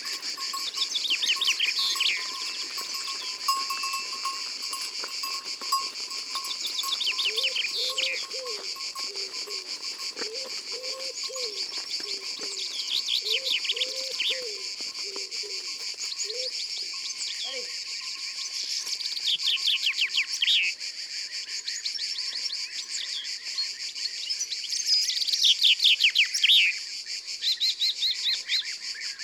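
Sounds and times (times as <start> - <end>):
insects buzzing: 0.0 - 21.8
songbirds singing: 0.0 - 29.2
common wood pigeon cooing: 6.7 - 16.6.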